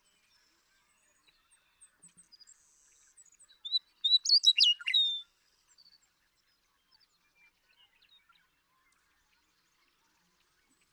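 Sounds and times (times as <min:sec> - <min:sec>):
Western meadowlark singing: 0:03.7 - 0:05.2.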